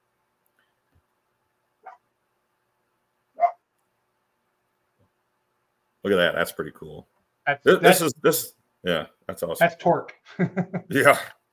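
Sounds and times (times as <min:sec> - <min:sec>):
dog barking: 0:01.8 - 0:02.0, 0:03.4 - 0:03.6
speech: 0:06.0 - 0:11.4
laughter: 0:10.3 - 0:11.3.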